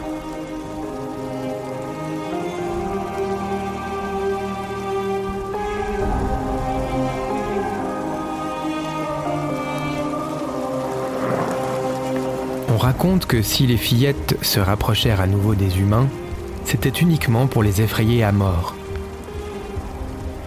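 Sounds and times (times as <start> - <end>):
torrential rain pouring down: 0.0 - 20.4
speech: 12.8 - 18.8.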